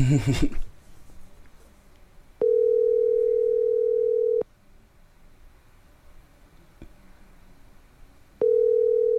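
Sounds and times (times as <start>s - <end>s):
phone ringback tone: 2.4s - 4.4s, 8.4s - 9.1s.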